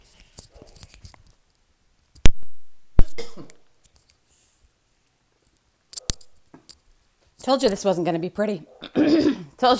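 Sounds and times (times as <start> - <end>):
person coughing with something stuck in the throat: 3.0 - 3.6, 8.8 - 9.6
speech: 7.4 - 8.8, 9.6 - 9.7.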